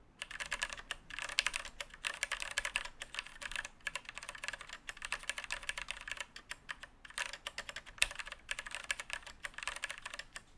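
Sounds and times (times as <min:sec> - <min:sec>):
Cherry MX Black mechanical keyboard switches: 0:00.2 - 0:10.5.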